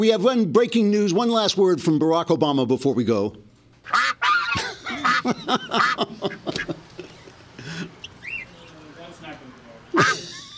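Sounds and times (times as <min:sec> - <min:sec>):
speech: 0:00.0 - 0:04.1, 0:05.2 - 0:06.7
duck quacking: 0:03.9 - 0:06.7, 0:09.9 - 0:10.4
laughter: 0:04.2 - 0:08.0, 0:09.9 - 0:10.5
faint chirpy sounds: 0:07.1 - 0:09.9.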